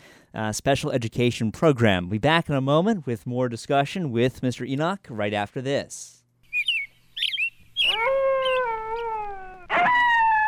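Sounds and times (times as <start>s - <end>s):
speech: 0.3s - 6.2s
bird chirps: 6.5s - 8.8s
wolf howling: 7.8s - 10.4s.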